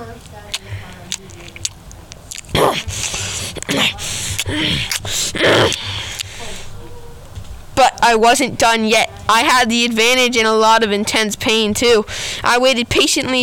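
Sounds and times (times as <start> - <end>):
dog chewing on the flesh of a bitten human forearm: 0.0 - 6.3
dog growling and snuffling: 2.4 - 6.1
speech: 8.1 - 13.4.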